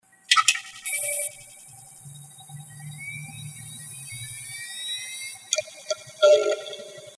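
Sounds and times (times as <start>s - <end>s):
Seagate Barracuda 400GB hard drive starting up: 0.9s - 6.2s.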